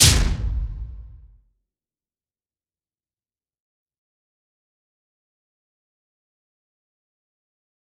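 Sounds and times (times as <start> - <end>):
impact slam one shot effect: 0.0 - 1.4.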